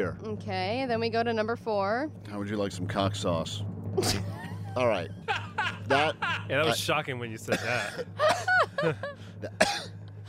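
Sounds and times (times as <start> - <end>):
speech: 0.0 - 9.8
steady low hum: 0.0 - 10.2
laughter: 4.0 - 6.8, 7.5 - 9.6
throat clearing: 7.5 - 8.0, 9.6 - 9.9.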